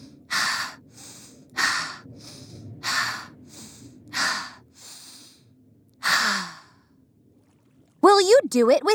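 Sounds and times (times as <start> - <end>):
person taking deep breaths: 0.0 - 6.9
speech: 8.3 - 8.9.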